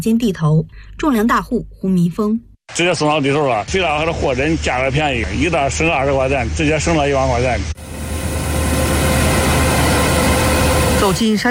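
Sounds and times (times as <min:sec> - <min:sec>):
speech: 0:00.0 - 0:08.0, 0:11.0 - 0:11.4
combine harvester at full throttle during a corn harvest in a village field: 0:03.7 - 0:11.4.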